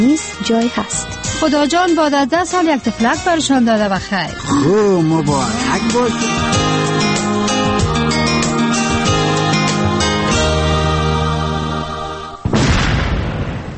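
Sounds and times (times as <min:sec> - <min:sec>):
speech: 0:00.0 - 0:07.1
steady tonal music: 0:04.4 - 0:12.4
loud landmine explosion with rumbling decay: 0:12.4 - 0:13.7.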